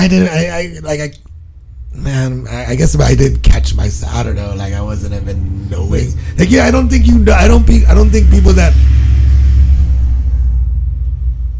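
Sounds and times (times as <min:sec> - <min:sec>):
speech: 0:00.0 - 0:01.3, 0:01.9 - 0:09.1
heavy truck rumbling past: 0:03.6 - 0:11.5.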